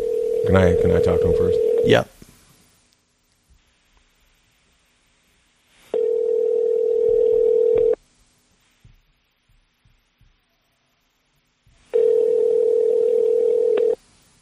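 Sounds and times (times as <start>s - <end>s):
long ringback tones on a phone line: 0.0s - 1.9s, 5.9s - 8.0s, 11.9s - 14.0s
speech: 0.5s - 2.2s.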